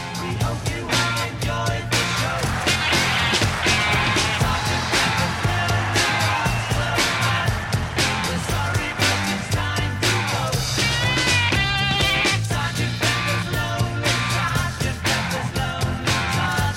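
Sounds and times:
crunching distorted electric guitars: 0.0s - 16.7s
loud dense rock song with bass and drums: 0.0s - 16.7s.

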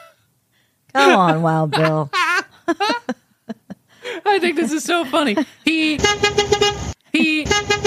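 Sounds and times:
speech: 0.9s - 3.1s, 4.4s - 7.8s
laughter: 1.0s - 6.0s
car horn honking: 5.9s - 7.8s.

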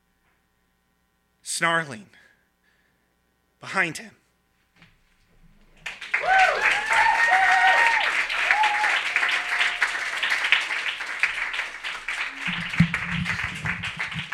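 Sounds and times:
speech: 1.6s - 2.2s, 3.6s - 4.2s
audience applause after a reading at a live reading event: 5.8s - 14.3s
audience whoops and cheers: 6.0s - 10.9s.

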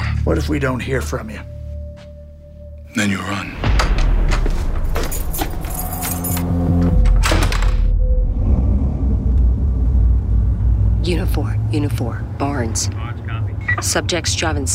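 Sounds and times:
speech: 0.2s - 1.6s, 2.9s - 3.7s, 11.1s - 13.0s, 13.8s - 14.7s
steady low rumble: 3.6s - 14.7s
car keys jangling as they are handed over: 5.0s - 6.6s.

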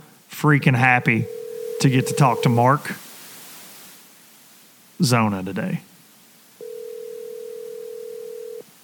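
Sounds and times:
speech: 0.4s - 3.0s, 5.0s - 5.9s
buzzing telephone ring tone on an outgoing call: 1.1s - 2.6s, 6.6s - 8.6s.

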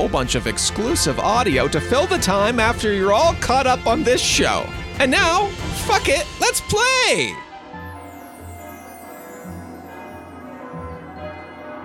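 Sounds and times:
speech: 0.1s - 7.4s
huge tower bells ringing in a peal: 7.8s - 11.8s.

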